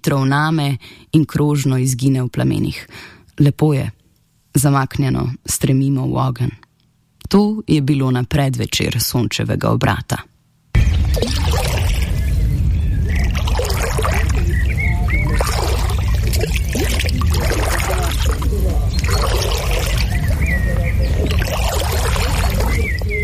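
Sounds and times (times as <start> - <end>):
speech: 0.0 - 6.6, 7.3 - 10.3
water sloshing and splashing from people swimming in a lake: 10.9 - 12.4, 13.0 - 23.2.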